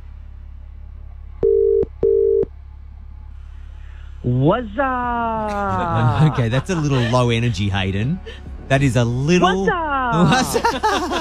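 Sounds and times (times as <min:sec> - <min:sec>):
faint low hum: 0:00.0 - 0:11.1
outgoing phone call ringing tone: 0:01.4 - 0:02.5
speech: 0:04.2 - 0:11.1
laughter: 0:04.6 - 0:11.1.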